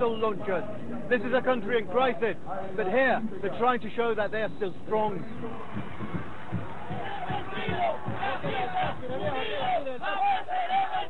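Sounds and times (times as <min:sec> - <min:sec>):
speech: 0:00.0 - 0:06.1, 0:07.9 - 0:11.0
large crowd cheering and shouting at a military parade in Venezuela: 0:05.1 - 0:11.0.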